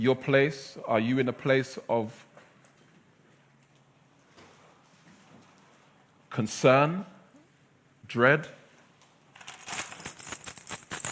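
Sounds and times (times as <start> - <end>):
speech: 0.0 - 2.3, 6.4 - 7.2, 8.1 - 8.6
keys jangling at a door: 9.4 - 11.1.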